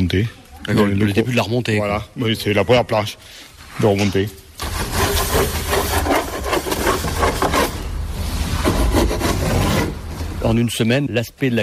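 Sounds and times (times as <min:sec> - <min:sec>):
speech: 0:00.0 - 0:05.5, 0:10.4 - 0:11.6
hand saw cutting a large wooden side planking board for a boat: 0:04.6 - 0:07.8, 0:08.6 - 0:10.0.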